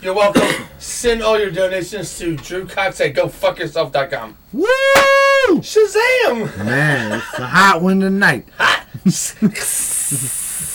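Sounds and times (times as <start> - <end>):
speech: 0.0 - 10.4
person making a sizzling hiss with their mouth: 9.6 - 10.7.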